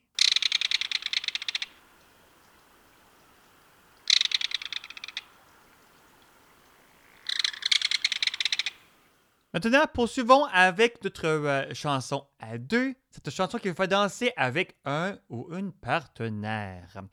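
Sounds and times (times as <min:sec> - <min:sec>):
burrow-nesting waterside bird calling with shrill trilled notes: 0:00.0 - 0:09.0
speech: 0:09.6 - 0:17.1.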